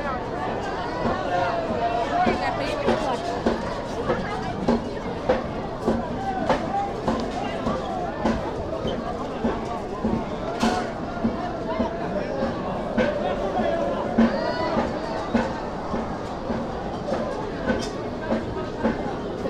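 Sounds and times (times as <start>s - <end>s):
night market crowd murmuring: 0.0s - 19.4s.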